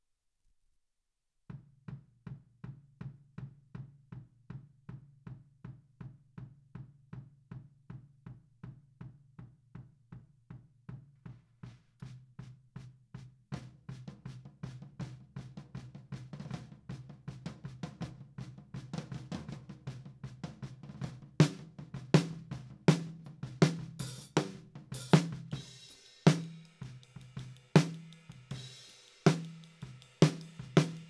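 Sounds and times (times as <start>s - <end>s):
snare drum top: 10.9s - 31.0s.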